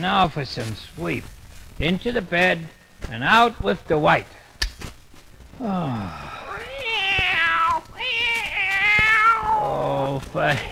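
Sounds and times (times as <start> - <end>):
speech: 0.0 - 4.4, 5.6 - 6.4, 9.8 - 10.7
cartoon cat meowing in a hotel room at night: 6.5 - 10.7.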